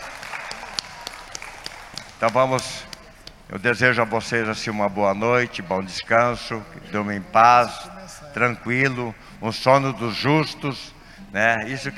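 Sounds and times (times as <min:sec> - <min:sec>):
small audience clapping for guests: 0:00.0 - 0:03.5
speech: 0:02.2 - 0:02.9, 0:03.5 - 0:11.9.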